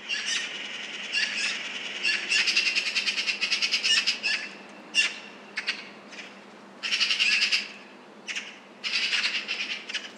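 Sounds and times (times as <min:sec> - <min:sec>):
Eurasian magpies chattering alarm calls: 0:00.0 - 0:10.1.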